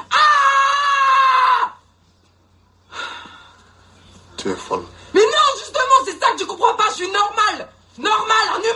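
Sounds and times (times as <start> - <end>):
woman screaming loudly: 0.0 - 1.8
speech: 4.4 - 5.1, 6.4 - 8.7.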